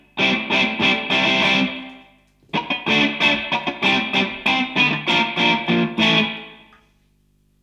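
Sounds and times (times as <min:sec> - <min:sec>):
crunchy guitar riff: 0:00.0 - 0:06.7.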